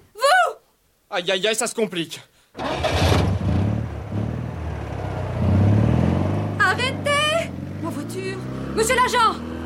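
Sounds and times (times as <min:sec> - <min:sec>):
person calling out loudly: 0:00.2 - 0:00.6
speech: 0:01.1 - 0:03.2, 0:08.8 - 0:09.6
Visa car engine starting and revving as the car is stolen: 0:02.6 - 0:09.6.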